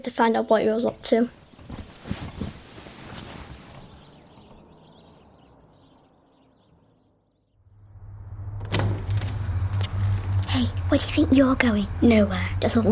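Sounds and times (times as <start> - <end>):
speech: 0.0 - 1.4, 11.4 - 12.9
low hum: 4.0 - 12.9
sharper knock or thud: 8.6 - 9.4
bedroom door eased shut with soft clicks and rattles: 8.6 - 10.2.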